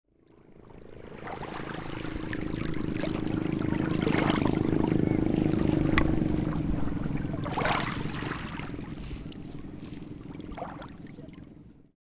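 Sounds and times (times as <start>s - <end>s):
motorboat passing slowly: 0.1s - 12.0s
gentle waves breaking on a beach: 0.5s - 11.8s.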